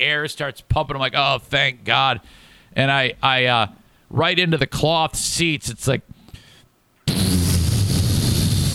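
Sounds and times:
speech: 0.0 - 6.2
voice imitating a rumbling fart: 7.1 - 8.7.

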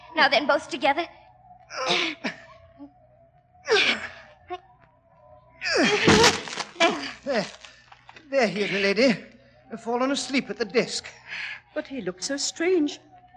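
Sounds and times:
speech: 0.2 - 3.0, 7.3 - 7.6, 8.3 - 13.1
door breaking with a crash and splintering: 5.9 - 7.6
door being forced open with heavy straining bursts: 6.0 - 6.9.

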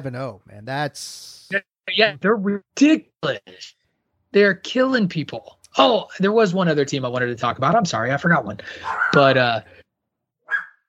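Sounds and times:
speech: 0.0 - 9.8
dog barking: 8.8 - 9.2, 10.5 - 10.8.

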